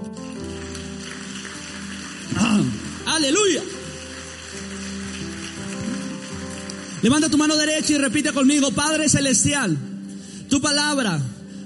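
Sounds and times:
crowd applause: 0.2 - 7.6
speech: 2.6 - 3.8, 7.0 - 9.9, 10.5 - 11.3.

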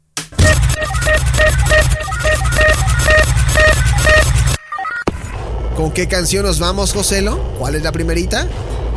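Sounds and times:
loud electronic musical roulette spin sound effect on a radio program: 0.4 - 4.6
speech: 5.8 - 8.8.

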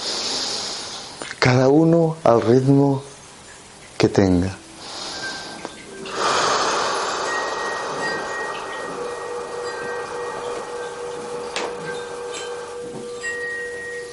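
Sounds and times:
speech: 1.2 - 3.1, 4.0 - 4.6
gong played during a guided breathing exercise: 6.0 - 14.1.

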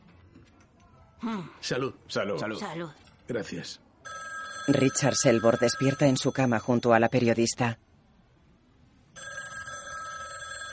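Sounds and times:
speech: 1.2 - 3.8, 4.7 - 7.8
telephone bell ringing with electronic trill: 4.0 - 7.3, 9.2 - 10.7.

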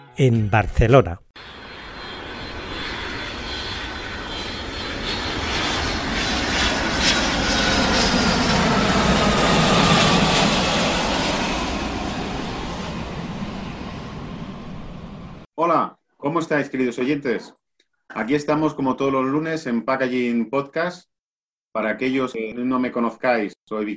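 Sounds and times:
speech: 0.2 - 1.2, 16.4 - 21.1, 21.8 - 23.9
aircraft engine roar in an airport terminal: 1.4 - 15.5.

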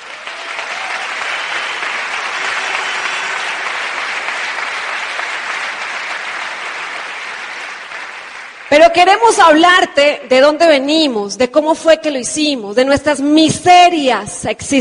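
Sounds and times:
large audience applauding: 0.0 - 9.3
speech: 8.7 - 14.7.

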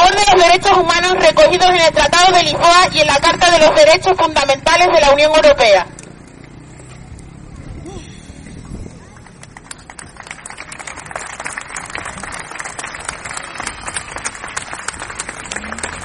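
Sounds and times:
speech: 0.1 - 5.9
audience applause for a female speaker: 9.1 - 16.0.

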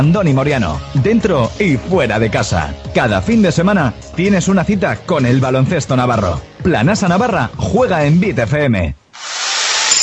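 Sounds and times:
speech: 0.0 - 9.3
power drill whirring in renovation work: 9.2 - 10.0.

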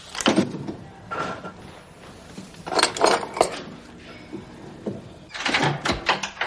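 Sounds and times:
drawer sliding open: 0.2 - 6.4
keys rattling and jingling as they're pulled out of a drawer: 2.6 - 4.4.

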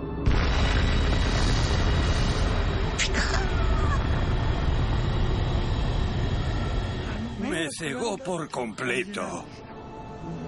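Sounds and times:
atomic bomb explosion over a city: 0.2 - 7.7
brief sharp crack: 0.3 - 5.8
speech: 7.8 - 9.6.

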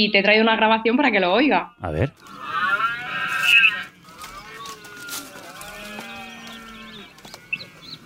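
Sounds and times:
speech: 0.0 - 2.5
red deer stag bellowing during the rut: 2.2 - 7.7.

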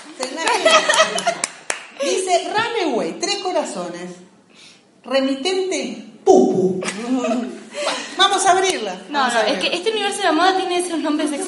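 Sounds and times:
one person clapping hands: 0.0 - 2.0
laughter: 0.2 - 2.3, 6.8 - 8.3
speech: 0.2 - 4.3, 5.0 - 11.4.

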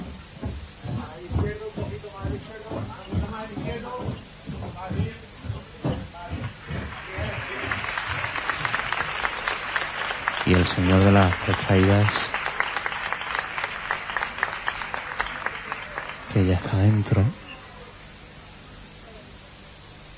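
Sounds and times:
rhythmic low thumping: 0.0 - 12.3
crowd applauding during a Holy Week procession: 6.2 - 17.4
speech: 10.5 - 12.4, 16.4 - 17.4.

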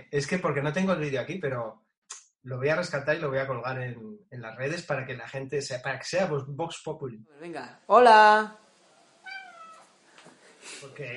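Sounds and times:
speech: 0.1 - 1.8, 2.4 - 8.6, 10.7 - 11.1
cat meowing: 9.2 - 9.9, 11.0 - 11.1.

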